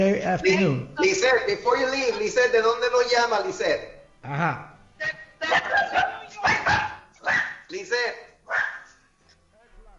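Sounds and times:
speech: 0.0 - 4.7, 5.5 - 6.8, 7.7 - 8.7
dog barking over phone line: 5.5 - 7.7, 8.5 - 8.9.

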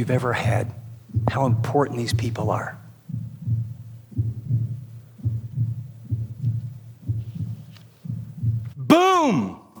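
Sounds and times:
speech: 0.0 - 2.8, 8.9 - 9.6
steady heartbeat thumping in lub-dub pairs: 0.0 - 8.9.

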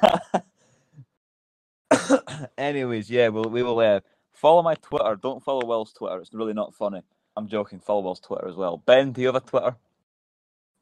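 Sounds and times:
person coughing: 0.0 - 0.4, 1.9 - 2.6
speech: 2.4 - 9.9.

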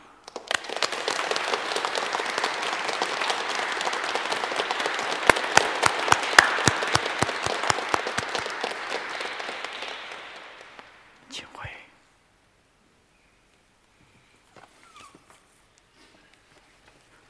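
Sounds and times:
audience giving warm applause: 0.0 - 11.4
sharp individual claps: 0.0 - 11.7.

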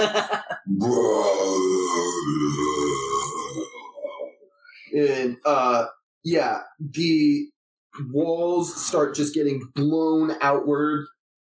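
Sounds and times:
laughter: 0.0 - 0.7
speech: 0.0 - 2.8, 5.0 - 11.2
loud drawn-out deep throaty belch: 0.7 - 4.2.

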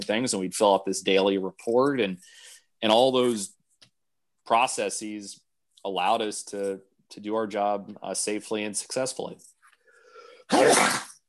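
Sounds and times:
speech: 0.0 - 3.6, 4.5 - 9.5, 10.5 - 11.0
sneeze: 10.5 - 11.2.

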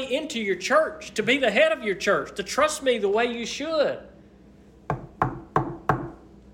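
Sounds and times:
speech: 0.0 - 4.1
firm knocks on a door: 4.9 - 6.2.

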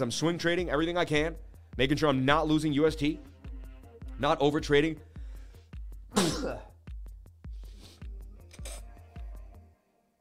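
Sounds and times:
speech: 0.0 - 3.3, 4.2 - 5.1, 6.1 - 6.7
steady thumping beat with regular bass hits: 0.5 - 9.5
single loud sneeze: 6.1 - 6.8.

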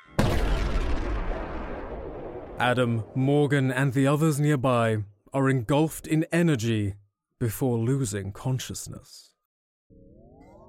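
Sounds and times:
crystal shattering in a large explosion: 0.2 - 3.2
speech: 2.6 - 9.3.

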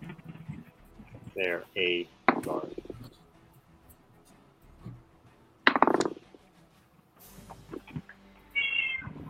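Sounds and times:
speech: 1.4 - 2.8
cat meowing: 8.5 - 9.2.

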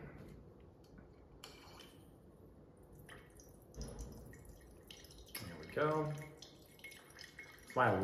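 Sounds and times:
control wine trickling and splashing into a glass: 3.3 - 8.0
speech: 5.8 - 6.3, 7.8 - 8.0.

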